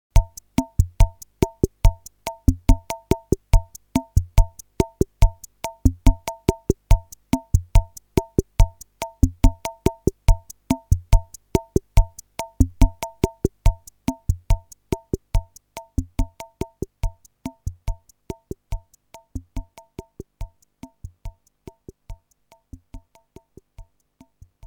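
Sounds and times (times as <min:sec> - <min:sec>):
drum machine cha-cha rhythm: 0:00.1 - 0:24.6.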